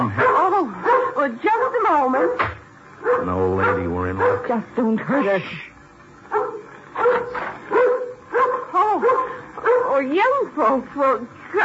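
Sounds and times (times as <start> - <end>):
dog barking: 0.0 - 4.6, 6.3 - 10.1
speech: 1.9 - 2.6, 3.2 - 5.7, 10.0 - 11.6.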